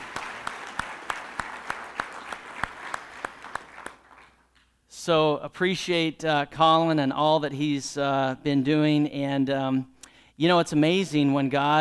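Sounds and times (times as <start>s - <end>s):
church congregation applause: 0.0s - 4.7s
speech: 5.0s - 11.8s.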